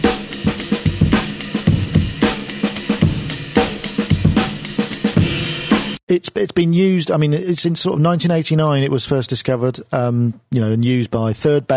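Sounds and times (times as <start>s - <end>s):
breakbeat drum loop of kick, snare and cymbals: 0.0s - 6.0s
speech: 6.1s - 11.7s.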